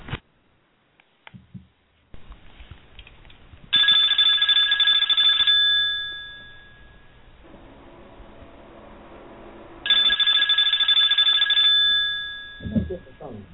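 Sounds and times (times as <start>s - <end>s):
telephone bell ringing: 3.7s - 7.2s, 9.9s - 13.2s.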